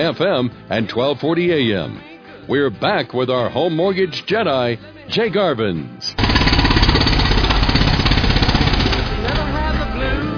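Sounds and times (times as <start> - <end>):
speech: 0.0 - 6.3
loud jackhammer rattling: 6.2 - 10.2.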